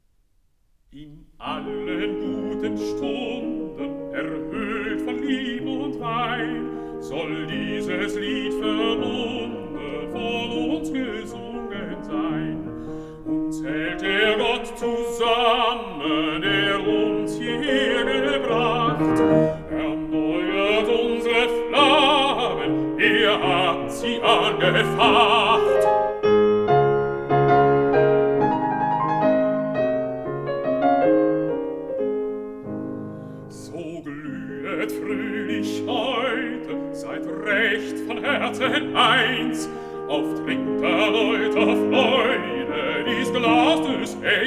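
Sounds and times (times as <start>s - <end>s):
piano accompanying a song: 0.0s - 44.4s
person singing a song: 0.9s - 12.7s, 13.5s - 26.2s, 33.5s - 44.4s.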